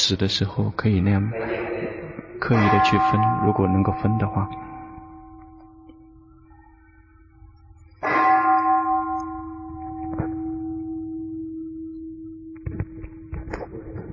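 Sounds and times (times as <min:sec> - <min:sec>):
speech: 0:00.1 - 0:01.8, 0:02.4 - 0:04.7
laughter: 0:01.3 - 0:02.7
bell ringing: 0:02.5 - 0:06.9, 0:08.0 - 0:12.5.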